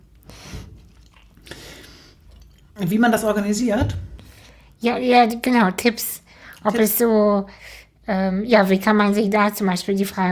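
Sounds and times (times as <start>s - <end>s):
person chewing nuts: 0.1s - 2.8s
speech: 2.8s - 4.0s, 4.8s - 10.3s.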